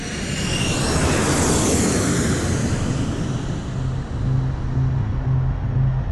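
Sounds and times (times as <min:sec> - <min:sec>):
drone aircraft roaring overhead: 0:00.0 - 0:06.1
low droning hum: 0:03.2 - 0:06.1.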